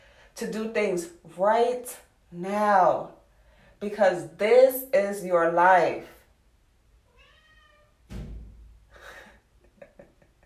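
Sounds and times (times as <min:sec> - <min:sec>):
speech: 0:00.4 - 0:03.2, 0:03.8 - 0:06.2
cat meowing: 0:07.1 - 0:08.0
dull thump: 0:08.1 - 0:08.8.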